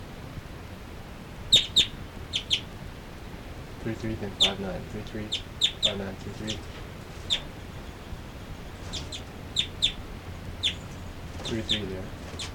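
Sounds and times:
two birds calling back and forth: 1.4s - 12.5s
person speaking quietly: 3.8s - 6.7s, 11.4s - 12.2s.

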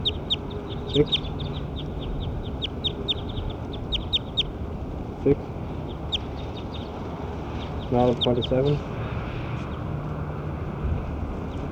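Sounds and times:
bird calling in short high chirps: 0.0s - 4.6s, 5.8s - 6.9s
constant low rumble: 0.0s - 11.7s
speech: 0.9s - 1.3s, 5.2s - 5.5s, 7.9s - 9.0s.

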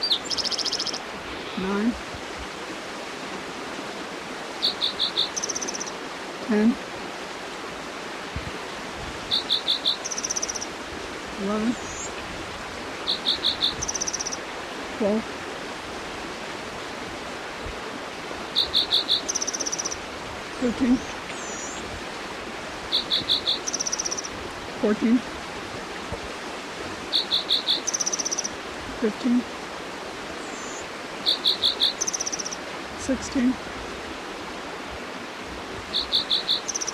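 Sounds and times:
insects calling: 0.0s - 1.6s, 4.6s - 6.0s, 9.3s - 10.8s, 11.5s - 12.2s, 13.0s - 14.4s, 18.5s - 20.0s, 21.0s - 21.8s, 22.9s - 24.4s, 27.1s - 28.6s, 30.4s - 32.7s, 35.9s - 36.9s
birds chirping: 0.0s - 1.9s, 4.6s - 6.0s, 9.3s - 10.7s, 13.0s - 14.4s, 18.6s - 20.0s, 22.9s - 24.4s, 27.1s - 28.6s, 30.4s - 32.6s, 35.9s - 36.9s
creek flowing: 0.0s - 36.9s.

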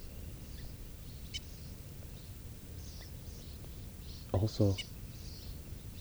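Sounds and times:
bird giving short sharp high alarm calls at a hawk: 4.3s - 4.9s
speech: 4.3s - 4.9s.

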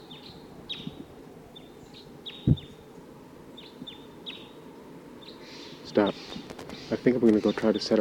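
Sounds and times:
wild bird giving short high chirping calls: 0.0s - 8.0s
brief low thump: 2.4s - 2.7s
speech: 6.0s - 6.2s, 7.0s - 8.0s.

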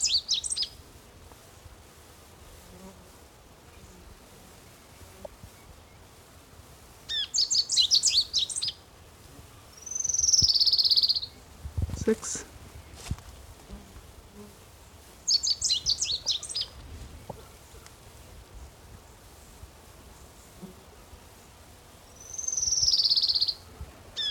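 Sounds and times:
sparrow singing in short bursts of high chirps: 0.0s - 0.7s, 7.1s - 8.8s, 9.8s - 11.4s, 15.3s - 16.8s, 22.2s - 23.6s
faint steady noise: 0.0s - 24.2s.

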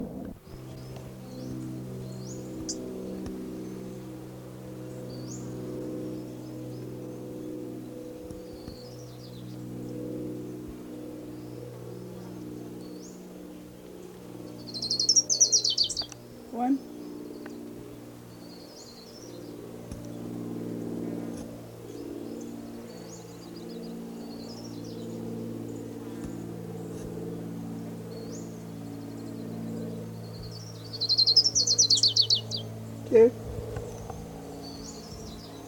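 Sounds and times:
low droning hum: 0.0s - 35.6s
orange-crowned warbler song: 0.0s - 35.6s.

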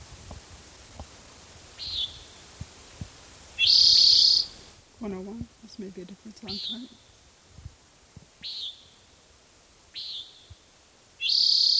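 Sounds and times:
Common nighthawk calling overhead: 1.8s - 2.4s, 3.6s - 4.7s, 6.4s - 7.2s, 8.4s - 9.1s, 9.9s - 10.6s, 11.2s - 11.7s
speech: 5.0s - 7.2s.

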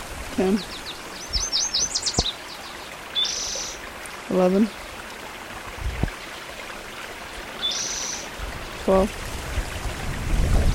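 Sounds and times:
hiss: 0.0s - 6.5s, 7.2s - 9.6s
speech: 0.4s - 0.9s, 4.3s - 4.8s, 8.9s - 9.2s
warbler singing: 0.4s - 3.8s, 7.6s - 9.0s.

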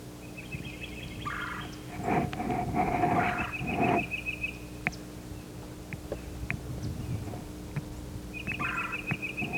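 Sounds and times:
yellow-throated warbler singing: 0.2s - 2.0s, 3.0s - 9.5s
calls and chips from other birds in a mixed flock: 0.3s - 1.9s, 3.2s - 9.5s.

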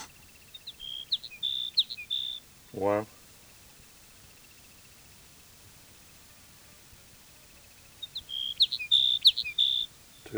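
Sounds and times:
sage sparrow song: 0.0s - 3.6s, 7.6s - 10.3s
speech: 2.8s - 3.2s.

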